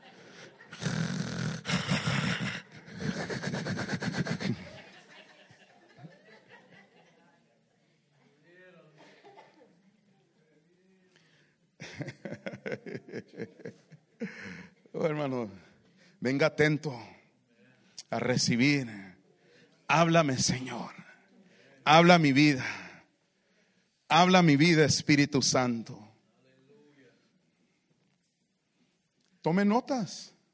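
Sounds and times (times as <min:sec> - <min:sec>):
people chuckling: 0:00.0 - 0:07.4, 0:11.8 - 0:14.8
voices mimicking loud raspy snoring: 0:00.3 - 0:04.8
speech: 0:15.1 - 0:15.6, 0:16.2 - 0:17.1, 0:18.1 - 0:19.0, 0:19.9 - 0:21.0, 0:21.8 - 0:22.8, 0:24.1 - 0:26.0, 0:29.4 - 0:30.4.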